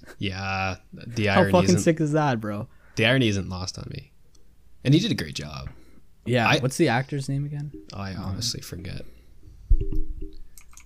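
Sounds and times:
speech: 0.2 - 4.1, 4.8 - 9.2
typing on a clicky computer keyboard: 9.8 - 10.8.

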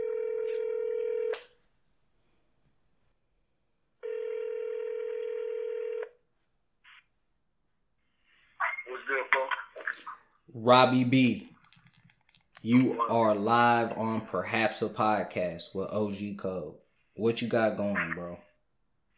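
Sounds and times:
phone line electronic ringback tone: 0.0 - 1.3, 4.0 - 6.1
person speaking on a phone line: 8.6 - 11.6, 12.6 - 15.1, 17.2 - 18.6
speech: 10.6 - 11.5, 12.6 - 18.5.

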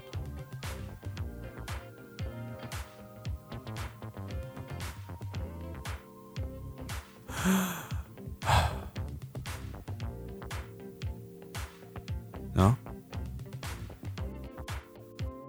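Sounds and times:
soft steady musical background: 0.0 - 15.4
slow deliberate breathing in and out: 7.3 - 9.0
speech: 7.4 - 7.8, 12.6 - 12.8.

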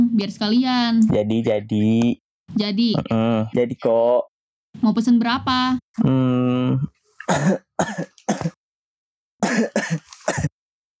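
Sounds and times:
speech: 0.2 - 8.6
throat clearing: 6.0 - 8.6, 9.4 - 10.5
person coughing harshly: 7.3 - 8.6, 9.4 - 10.6.

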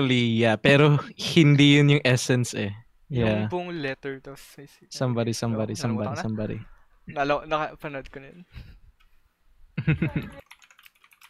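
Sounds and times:
speech: 0.0 - 8.7, 9.8 - 10.4
fast typing on a keyboard: 10.1 - 11.2.

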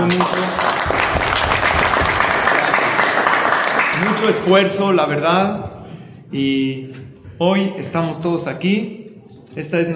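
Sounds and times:
crowd applauding: 0.0 - 4.7
speech: 0.1 - 0.5, 4.2 - 9.0, 9.6 - 9.9.

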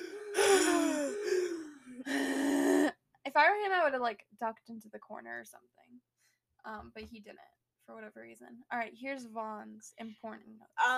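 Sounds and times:
voice imitating a character breathing loudly while hiding under a cloak: 0.0 - 2.8
speech: 3.4 - 10.9.

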